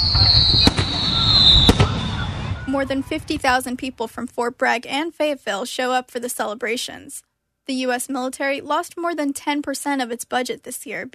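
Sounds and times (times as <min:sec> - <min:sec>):
steady high-pitched whine: 0:00.0 - 0:03.8
fireworks exploding in sharp bangs: 0:00.0 - 0:04.2
low rumble of noise: 0:00.0 - 0:04.2
speech: 0:02.8 - 0:11.1.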